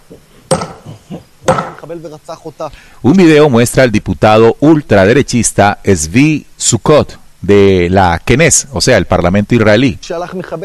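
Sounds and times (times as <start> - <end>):
sledgehammer blows smashing a stone monument: 0.5 - 1.8
speech: 1.8 - 10.6.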